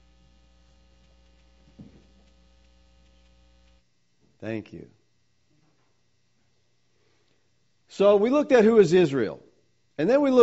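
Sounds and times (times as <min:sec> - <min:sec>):
electrical mains hum from sound system: 0:00.0 - 0:10.4
faint thump: 0:01.7 - 0:02.2
speech: 0:04.4 - 0:05.0, 0:08.0 - 0:09.4, 0:10.0 - 0:10.4.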